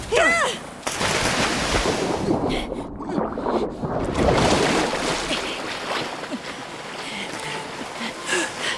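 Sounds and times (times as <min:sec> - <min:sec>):
churning water around a sinking ship: 0:00.7 - 0:08.7
loud splash of people jumping overboard from a sinking ship: 0:00.9 - 0:06.3.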